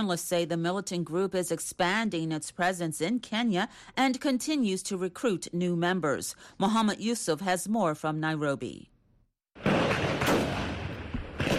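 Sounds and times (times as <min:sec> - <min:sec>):
speech: 0:00.0 - 0:08.9
gunfire barrage between a gunman and security forces at a police station in Kapenguria, Kenya: 0:09.6 - 0:11.5.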